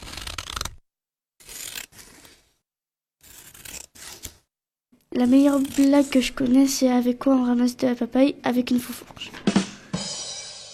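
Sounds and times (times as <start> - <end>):
scissors cutting paper: 0.0 - 0.8, 1.4 - 2.6, 3.2 - 4.5, 5.2 - 6.7
speech: 5.2 - 9.4.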